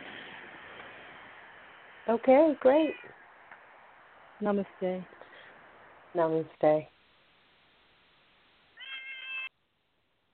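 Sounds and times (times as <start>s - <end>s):
speech: 2.1s - 3.2s, 4.4s - 5.2s, 6.1s - 6.9s
cat meowing: 8.8s - 9.5s.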